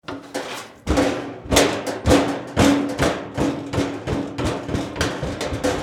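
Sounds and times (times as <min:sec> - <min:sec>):
metal garbage can set down and wobbling: 0:00.0 - 0:05.7.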